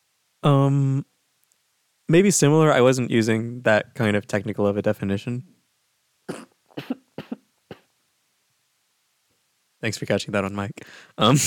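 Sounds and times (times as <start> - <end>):
speech: 0.4 - 1.1, 2.1 - 5.6, 9.8 - 11.4
coughs into an elbow: 6.3 - 7.9.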